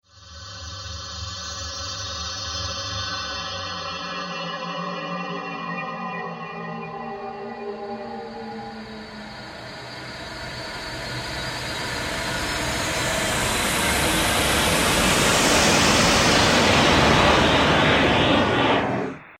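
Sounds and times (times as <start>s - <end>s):
ghostly horror sound effect: 11.1s - 19.3s.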